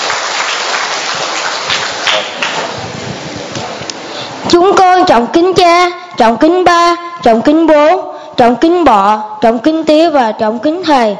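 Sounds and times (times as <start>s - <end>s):
crowd applauding children about to put on a play: 0.0s - 2.9s
speech: 4.6s - 11.1s.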